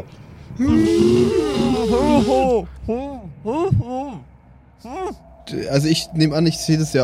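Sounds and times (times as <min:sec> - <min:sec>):
speech: 0:00.0 - 0:07.0
person imitating a muffled scream with apple in mouth: 0:00.6 - 0:04.2.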